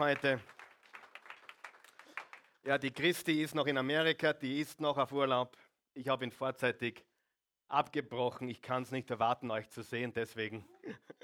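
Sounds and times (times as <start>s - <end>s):
speech: 0.0s - 0.6s, 2.6s - 7.1s, 7.7s - 11.2s
crowd applauding: 0.0s - 2.6s.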